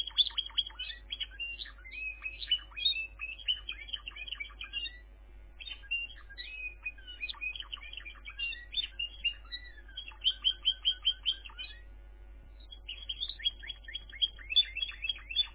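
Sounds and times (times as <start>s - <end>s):
canary singing: 0.0s - 15.5s
steady low electrical hum: 0.0s - 15.5s.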